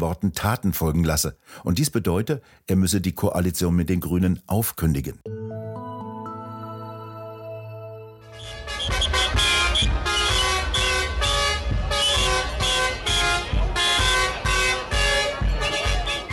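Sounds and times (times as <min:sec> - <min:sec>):
speech: 0:00.0 - 0:05.4
tractor horns honking at farmers' blockade in Biberach an der Riss: 0:08.3 - 0:16.3
low rumble of tractor engines: 0:08.4 - 0:16.3.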